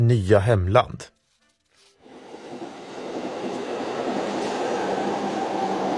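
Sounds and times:
speech: 0.0 - 1.2
train rolling on rails with rattling wheels: 2.0 - 5.9.

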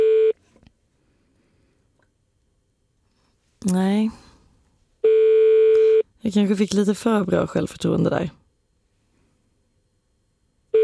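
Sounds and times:
telephone ringing tone on an outgoing call: 0.0 - 0.4, 5.0 - 6.0
speech: 3.6 - 4.2, 6.2 - 8.4.

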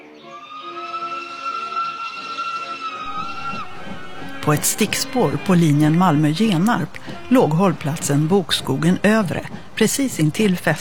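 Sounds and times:
steam whistle: 0.4 - 7.4
rumble of a running train: 3.0 - 10.7
speech: 4.4 - 10.7.

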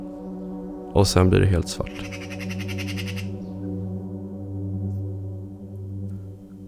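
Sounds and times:
speech: 1.0 - 2.6
magpie giving a harsh rattling squawk: 1.8 - 3.4.

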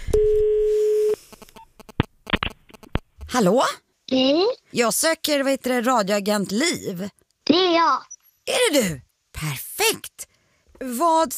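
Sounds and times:
telephone ringback tone of outgoing call: 0.2 - 1.2
speech: 3.4 - 11.3.

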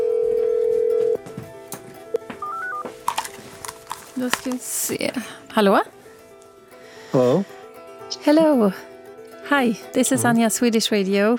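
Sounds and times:
telephone dial tone: 0.0 - 1.2, 2.4 - 2.8
short keypad beeps of differing pitch: 2.4 - 2.8
speech: 4.2 - 6.0, 7.1 - 8.9, 9.5 - 11.3.

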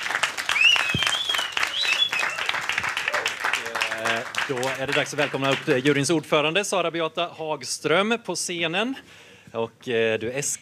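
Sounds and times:
audience applauding an orchestra: 0.0 - 6.2
high whistles from audience: 0.5 - 2.6
speech: 4.5 - 10.6.

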